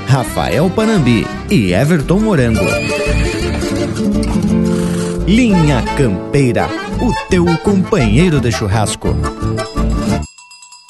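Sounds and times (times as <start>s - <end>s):
loud dense country-style instrumental music: 0.0s - 10.3s
speech: 0.1s - 4.5s, 5.3s - 9.7s
horse neighing: 2.4s - 5.2s.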